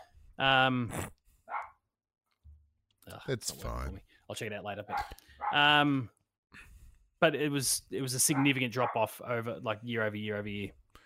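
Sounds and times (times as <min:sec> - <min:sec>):
speech: 0:00.4 - 0:01.2, 0:03.1 - 0:10.8
dogs barking outside a door: 0:01.5 - 0:01.8, 0:04.9 - 0:05.7, 0:08.3 - 0:09.1.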